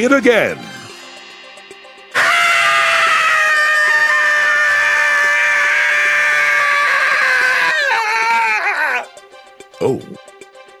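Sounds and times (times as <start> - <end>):
speech: 0.0 - 0.7, 9.8 - 10.2
person screaming in terror: 2.2 - 9.1.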